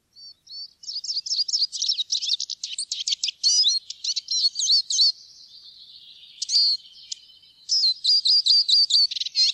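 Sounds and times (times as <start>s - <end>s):
Eurasian siskin giving fast high-pitched twittering runs of chirps: 0.1s - 9.5s.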